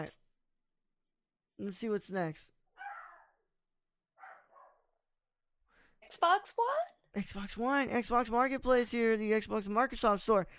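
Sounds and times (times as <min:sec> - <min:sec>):
speech: 0:00.0 - 0:00.3, 0:01.6 - 0:02.6, 0:06.1 - 0:10.5
dog barking: 0:02.8 - 0:03.4, 0:04.2 - 0:05.0.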